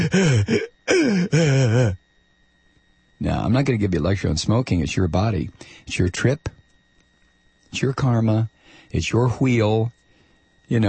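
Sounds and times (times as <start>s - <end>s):
man imitating gasping for breath: 0.0s - 2.0s
speech: 0.1s - 2.0s, 3.2s - 6.6s, 7.7s - 10.0s, 10.7s - 10.8s.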